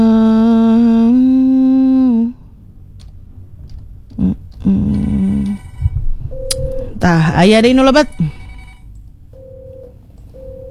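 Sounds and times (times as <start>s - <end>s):
constant low hum: 0.0s - 10.7s
telephone ringing with an incoming call in a studio: 5.0s - 6.8s, 7.9s - 10.7s
speech: 7.1s - 8.3s.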